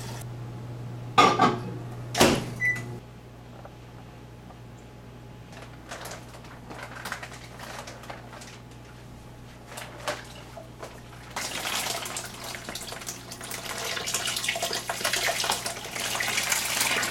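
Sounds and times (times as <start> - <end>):
low constant hum: 0.0 - 17.0
distilled water pouring into a large fermenting jug of grape juice: 11.2 - 17.0.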